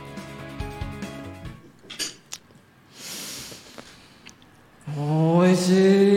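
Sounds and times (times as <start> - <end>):
quiet cutlery scraping on a dish: 1.8 - 2.2
cutlery clinking against a dish while eating a dish with onion: 1.8 - 2.3
speech: 5.0 - 6.0.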